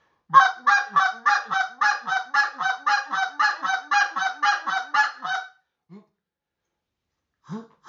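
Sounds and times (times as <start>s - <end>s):
goose call blown in a double cluck: 0.3s - 5.5s.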